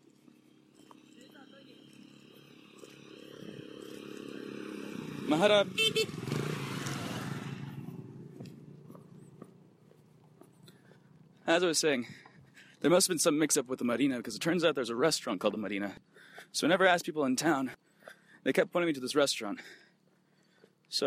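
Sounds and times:
motorbikes roaring past: 0.0 - 11.4
speech: 5.3 - 6.3, 11.5 - 12.2, 12.8 - 17.8, 18.4 - 19.8.

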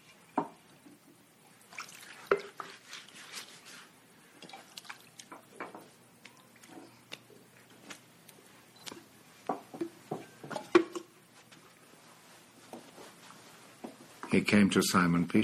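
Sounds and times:
water dripping and trickling in a wash basin: 0.0 - 3.1, 4.2 - 9.0
water poured and splashing in a wash basin: 0.0 - 7.3
speech: 14.3 - 15.4.

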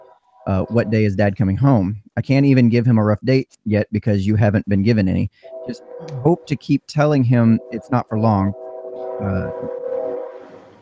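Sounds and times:
passing train horn blaring: 0.0 - 1.3, 5.0 - 10.8
low rumbling of rail traffic: 0.0 - 2.0, 4.3 - 10.8
speech: 0.5 - 8.6, 9.2 - 9.8.

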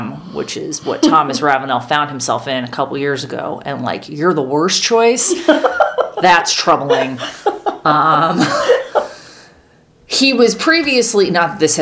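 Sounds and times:
speech: 0.4 - 8.8, 10.2 - 11.8
laughter: 5.3 - 9.2
person coughing: 8.3 - 9.1.

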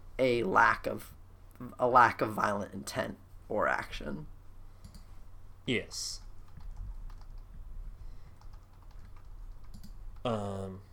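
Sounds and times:
speech: 0.2 - 4.3, 5.6 - 6.2, 10.2 - 10.9
quiet computer keyboard typing: 4.8 - 5.1, 6.2 - 7.6, 8.2 - 10.4.

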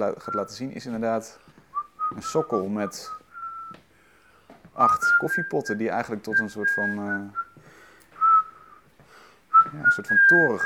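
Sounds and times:
speech: 0.0 - 1.5, 2.1 - 3.2, 4.8 - 7.4, 9.7 - 10.6
person whistling a wavering tune in a back room: 0.1 - 0.7, 1.7 - 3.8, 4.8 - 7.6, 8.2 - 8.9, 9.5 - 10.6.

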